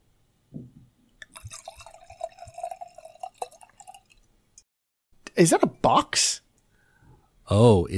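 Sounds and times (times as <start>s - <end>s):
sake poured into a glass: 1.2s - 4.3s
drips: 1.2s - 4.4s
speech: 5.4s - 6.4s, 7.5s - 7.9s.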